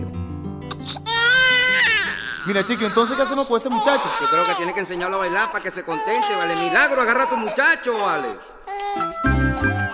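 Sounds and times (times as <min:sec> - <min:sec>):
baby crying with a loud sustained wail: 0:00.7 - 0:09.2
speech: 0:02.4 - 0:09.1.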